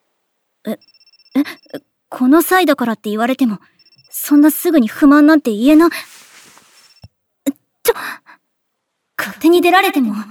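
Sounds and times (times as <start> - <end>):
speech: 0.6 - 6.1, 9.5 - 10.2
telephone ringing with a high electronic trill: 0.7 - 1.8, 3.7 - 5.1.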